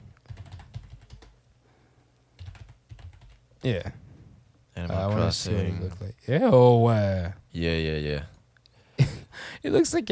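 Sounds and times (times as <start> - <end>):
typing on a computer keyboard: 0.2 - 1.4, 2.4 - 3.4
speech: 3.6 - 4.0, 4.8 - 8.3, 9.6 - 10.1.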